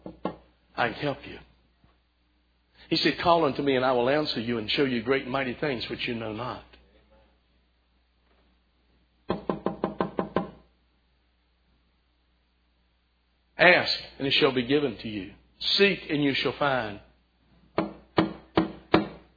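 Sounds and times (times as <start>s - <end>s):
speech: 0.8s - 1.5s, 2.9s - 6.7s, 13.6s - 17.1s
knocking on a wooden door: 9.3s - 10.6s.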